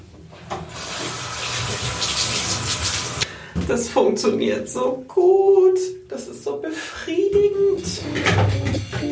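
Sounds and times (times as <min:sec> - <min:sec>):
warm water gushing through a hose into a basin in a bathroom: 0:00.8 - 0:03.3
speech: 0:03.6 - 0:09.1.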